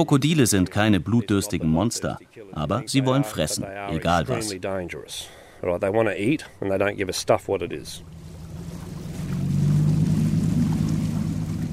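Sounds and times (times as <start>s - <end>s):
speech: 0.0s - 8.2s
boat engine droning as the boat is steered out onto the Adelaide River: 7.3s - 11.7s
faint water wash beneath the boat: 7.6s - 11.7s.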